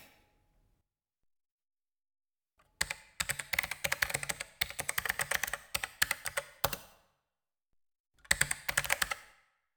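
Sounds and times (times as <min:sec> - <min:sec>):
keyboard typing: 0:02.8 - 0:06.8, 0:08.3 - 0:09.2.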